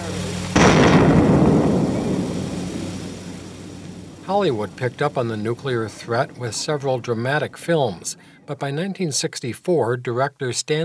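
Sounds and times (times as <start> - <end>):
long rumbling roar of atomic bomb explosion: 0.0 - 5.2
atomic bomb explosion blast in archival recording: 0.5 - 6.8
speech: 4.3 - 10.8.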